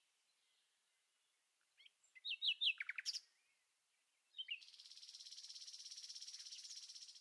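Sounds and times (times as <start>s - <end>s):
common nightingale song: 1.8s - 3.4s, 4.3s - 7.1s.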